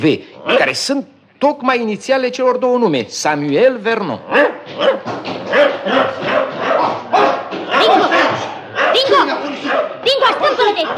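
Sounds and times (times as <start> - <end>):
speech: 0.0 - 6.5
dog barking and snarling: 4.2 - 10.9
people shouting: 4.9 - 10.9.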